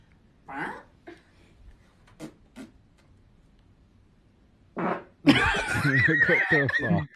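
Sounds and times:
short sputtering fart noises: 0:02.0 - 0:02.8, 0:04.8 - 0:05.2
laughter: 0:05.3 - 0:07.1
speech: 0:05.9 - 0:07.1.

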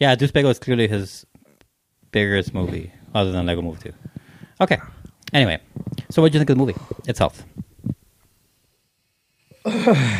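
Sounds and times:
speech: 0:00.0 - 0:01.3, 0:02.1 - 0:07.6, 0:09.6 - 0:10.1
person yawning: 0:09.5 - 0:10.1.

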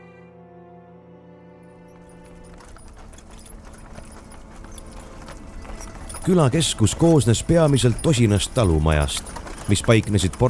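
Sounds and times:
clatter of horse hooves: 0:01.6 - 0:10.4
rustling outdoor ambience: 0:01.9 - 0:10.4
horses neighing among trees: 0:02.2 - 0:10.4
speech: 0:06.3 - 0:10.4.

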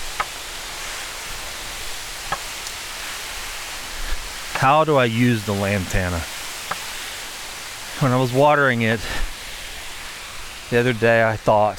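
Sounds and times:
garden fountains splashing water: 0:00.0 - 0:11.7
faint brief clicks: 0:02.3 - 0:02.8
speech: 0:04.6 - 0:06.3, 0:08.0 - 0:09.2, 0:10.7 - 0:11.7.

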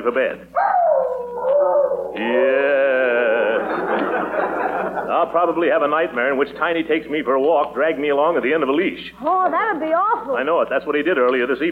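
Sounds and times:
speech: 0:00.0 - 0:00.8, 0:05.2 - 0:11.7
large dog howling: 0:00.6 - 0:03.4
laughter: 0:02.2 - 0:05.3.

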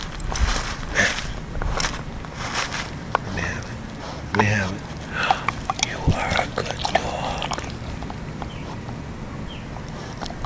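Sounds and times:
dog gnawing on a hard marble-like antler: 0:00.0 - 0:10.4
speech: 0:04.4 - 0:04.9.

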